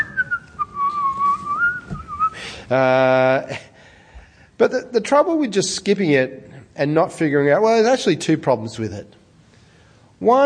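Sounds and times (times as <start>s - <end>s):
person whistling a short wavering tune: 0.0s - 2.4s
speech: 2.7s - 3.7s, 4.6s - 9.2s, 10.2s - 10.4s.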